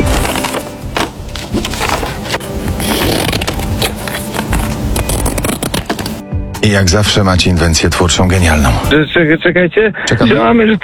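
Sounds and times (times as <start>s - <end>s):
scissors cutting through paper: 0.1s - 6.2s
speech: 6.6s - 10.8s.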